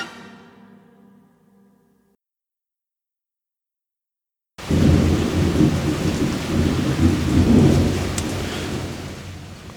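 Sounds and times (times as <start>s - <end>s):
deep rumbling thunder: 4.6s - 9.7s
heavy rain hissing in a rainstorm: 4.6s - 9.7s.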